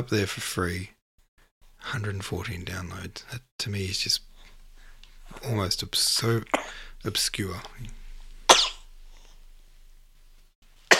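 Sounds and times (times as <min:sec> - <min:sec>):
speech: 0:00.0 - 0:01.0, 0:01.8 - 0:04.3, 0:05.3 - 0:08.0
sneeze from a sleeping person: 0:08.5 - 0:08.9.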